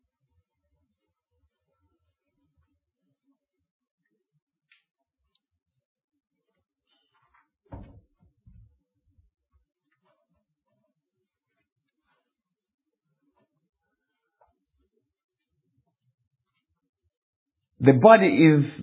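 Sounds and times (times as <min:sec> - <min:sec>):
heavy door thumping shut: 0:07.7 - 0:08.1
person giving a Bible teaching: 0:17.8 - 0:18.8
speech: 0:17.8 - 0:18.8.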